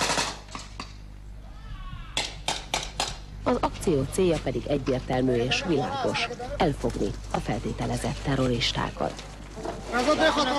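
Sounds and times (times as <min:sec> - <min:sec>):
gunshots in a military training exercise in the rain on the Kansas plains: 0:00.0 - 0:00.5
speech: 0:03.4 - 0:09.3, 0:09.9 - 0:10.5.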